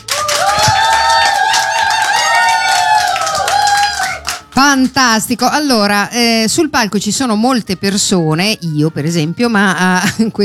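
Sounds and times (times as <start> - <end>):
cheering and whooping voices: 0.0 - 4.5
live studio audience clapping: 0.0 - 5.0
speech: 4.7 - 10.4.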